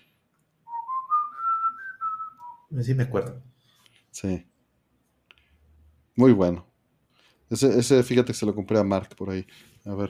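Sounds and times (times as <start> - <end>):
whistled video game music tune: 0.6 - 2.7
speech: 2.7 - 3.5, 4.1 - 4.5, 6.2 - 6.7, 7.5 - 10.0.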